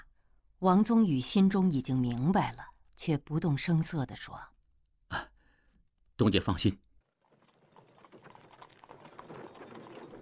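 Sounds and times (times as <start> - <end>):
speech: 0.6 - 4.5, 5.1 - 5.3, 6.2 - 6.8
horse hooves clip-clopping as a horse-drawn carriage pulls up and stops: 7.1 - 10.1.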